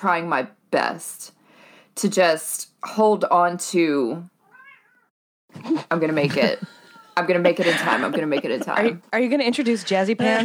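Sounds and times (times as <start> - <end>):
speech: 0.0 - 1.4, 2.0 - 4.3, 5.5 - 10.4
cat meowing behind a door: 4.4 - 5.1, 6.8 - 7.3
laughter: 5.6 - 10.4.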